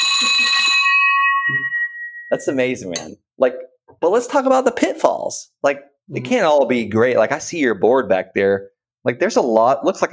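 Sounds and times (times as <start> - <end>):
victory bell struck in celebration: 0.0 - 3.1
speech: 2.3 - 10.1.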